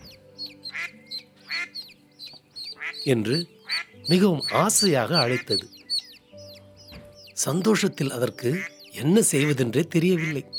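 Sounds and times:
mother duck quacking: 0:00.6 - 0:01.9, 0:02.7 - 0:05.7, 0:09.4 - 0:10.5
speech: 0:03.0 - 0:05.8, 0:07.4 - 0:10.5.

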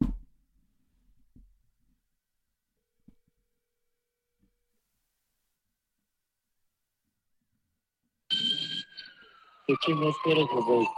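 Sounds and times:
ambulance siren in Nashville heard over a phone call: 0:08.3 - 0:10.9
voices talking: 0:09.0 - 0:10.9.

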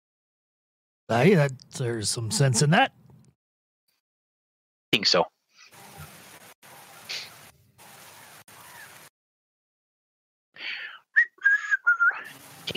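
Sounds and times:
speech: 0:01.1 - 0:03.0, 0:04.9 - 0:05.4
breathy hissing: 0:07.0 - 0:07.5
person whistling short clear notes: 0:11.1 - 0:12.3.

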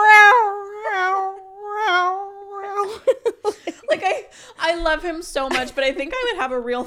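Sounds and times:
cat meowing and yowling: 0:00.0 - 0:02.9
speech: 0:04.3 - 0:06.8.

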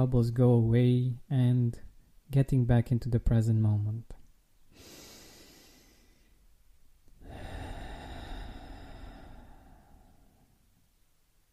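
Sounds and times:
speech: 0:00.0 - 0:04.2
deep breath in and out as a calming exercise: 0:04.7 - 0:06.4, 0:07.2 - 0:10.7.

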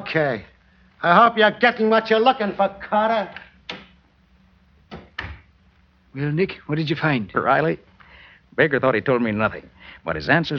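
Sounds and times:
speech: 0:00.1 - 0:03.4, 0:06.1 - 0:07.9, 0:08.6 - 0:10.5
door opening and closing: 0:04.9 - 0:05.5.

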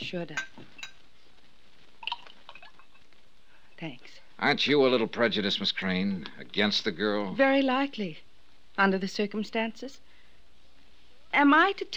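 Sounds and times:
speech: 0:00.1 - 0:00.7, 0:03.8 - 0:10.1, 0:11.3 - 0:11.9
light glassy clinks: 0:00.3 - 0:01.0
drink pouring into a glass: 0:02.0 - 0:03.0.

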